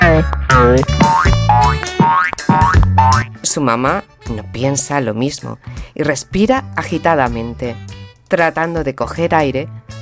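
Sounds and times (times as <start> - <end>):
speech: 0.2 - 1.0, 3.6 - 10.0
cartoon boing effects of bouncing on a trampoline: 0.5 - 3.3.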